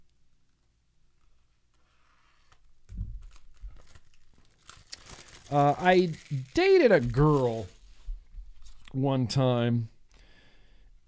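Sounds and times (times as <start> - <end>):
plastic wrapping on a record being torn open: 3.2 - 8.0
speech: 5.5 - 7.8, 9.0 - 9.9.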